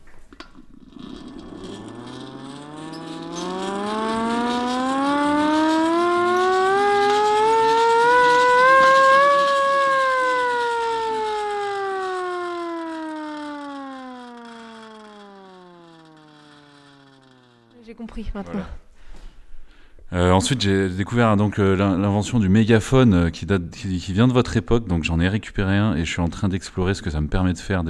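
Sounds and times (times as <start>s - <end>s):
small hand-cranked siren rising and falling: 0.0s - 18.6s
speech: 18.2s - 18.8s, 20.2s - 27.8s.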